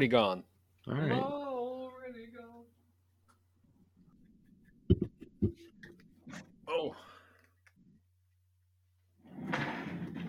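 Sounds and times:
speech: 0.0 - 1.4
office chair rolling across the floor: 9.2 - 10.2.

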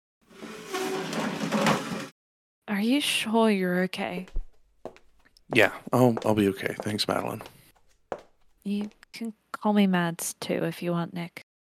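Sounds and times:
chair dragging across a hard floor: 0.2 - 2.1
speech: 2.8 - 4.4, 5.5 - 7.6, 8.6 - 11.4.

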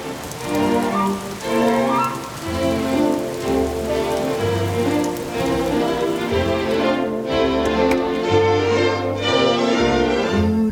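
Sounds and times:
steady rain falling outside: 0.0 - 10.6.

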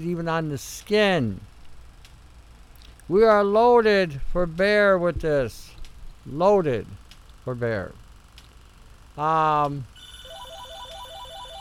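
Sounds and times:
speech: 0.0 - 1.5, 3.1 - 8.0, 9.2 - 9.9
brief loud buzzing tone: 9.9 - 11.5
phone electronic ringtone with a short stepped melody: 10.0 - 11.5.

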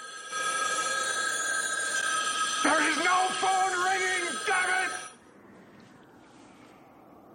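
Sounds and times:
several pay phones ringing at once: 0.0 - 5.2
person calling out: 2.7 - 5.1.

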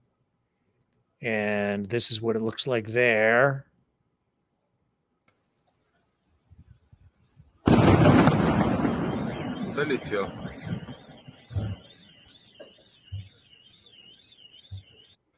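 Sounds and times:
speech: 1.2 - 3.7, 9.8 - 10.6
distant explosion from an attack on an electronics factory: 7.6 - 13.8
fainter low thuds: 7.7 - 13.4.

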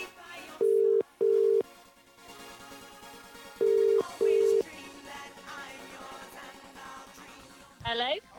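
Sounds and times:
telephone line ringback tones: 0.6 - 1.6, 3.6 - 4.7.

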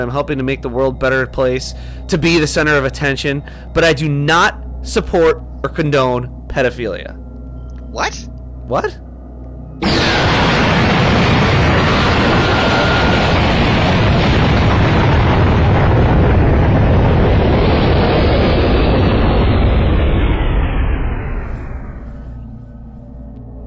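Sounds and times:
speech: 0.0 - 7.2, 7.9 - 9.0
energy cannon blast: 9.8 - 22.3.

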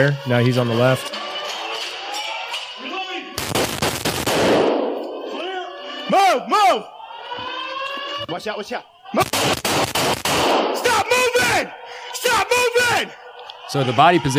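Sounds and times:
speech: 0.0 - 1.2, 6.4 - 7.0, 8.3 - 10.1, 11.0 - 14.3
laughter: 0.0 - 3.4, 4.8 - 9.6, 10.6 - 14.3
rifle gunfire inside a school building: 3.4 - 5.4, 9.2 - 11.0.

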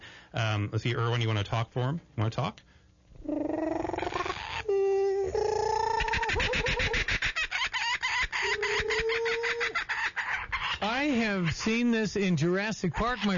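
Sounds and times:
speech: 0.3 - 3.5, 10.8 - 13.3
kookaburra from Australia calling: 3.2 - 12.0, 12.9 - 13.3.

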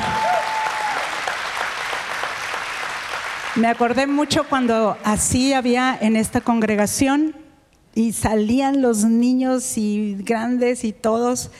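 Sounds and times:
large audience applauding: 0.0 - 4.9
speech: 3.6 - 7.4, 8.0 - 11.5.

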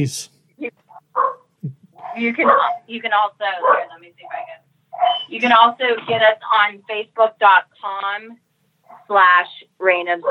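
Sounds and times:
speech: 0.0 - 0.8, 2.2 - 8.4, 9.1 - 10.2
dogs barking excitedly with sharp high yips: 1.1 - 2.9, 3.6 - 5.3.

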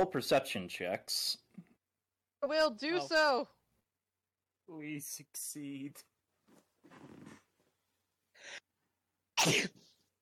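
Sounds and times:
speech: 0.0 - 1.4, 2.4 - 3.6, 4.7 - 6.1, 9.4 - 9.9
loud sneeze: 9.4 - 10.0.

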